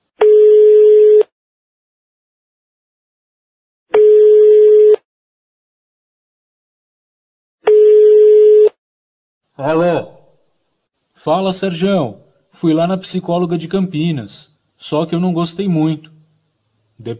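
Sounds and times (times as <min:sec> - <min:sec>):
telephone ringback tones: 0:00.2 - 0:01.2, 0:04.0 - 0:05.0, 0:07.7 - 0:08.7
speech: 0:09.6 - 0:10.1, 0:11.2 - 0:16.2, 0:17.0 - 0:17.1.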